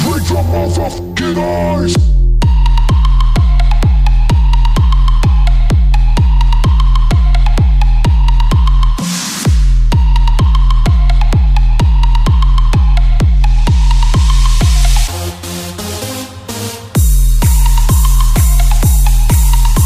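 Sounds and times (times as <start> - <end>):
EDM tune: 0.0 - 19.8.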